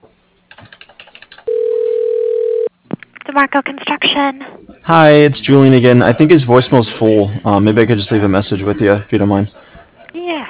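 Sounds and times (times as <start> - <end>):
steady single-pitched telephone tone during a call transfer: 1.5 - 2.7
speech: 3.4 - 9.6.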